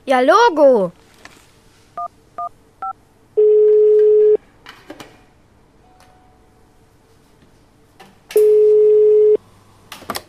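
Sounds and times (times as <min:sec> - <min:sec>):
speech: 0:00.1 - 0:01.0
long steady mobile phone ringing tones: 0:03.4 - 0:04.4, 0:08.4 - 0:09.4
mobile phone keypad beeps while dialing: 0:03.4 - 0:04.4.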